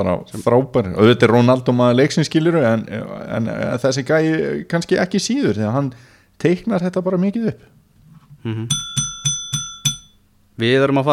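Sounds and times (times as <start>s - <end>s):
speech: 0.0s - 7.7s, 8.4s - 9.1s, 10.6s - 11.1s
small teacher's desk bell ringing: 8.7s - 10.3s.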